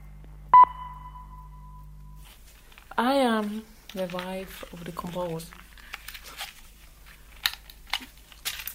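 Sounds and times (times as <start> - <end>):
faint low hum: 0.0 - 8.7
talking clock time signal electronic beep: 0.5 - 2.2
speech: 3.0 - 5.6.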